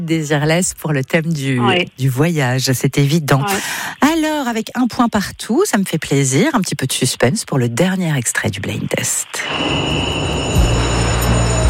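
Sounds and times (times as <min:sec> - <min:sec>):
speech: 0:00.0 - 0:11.4
thin high whine: 0:09.3 - 0:11.6
train rumbling at a railway station platform: 0:09.5 - 0:11.6.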